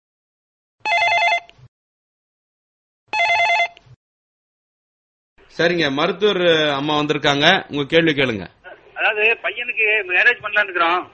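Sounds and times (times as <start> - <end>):
telephone bell ringing for an incoming call: 0.8 - 1.6, 3.1 - 3.8
speech: 5.5 - 11.1.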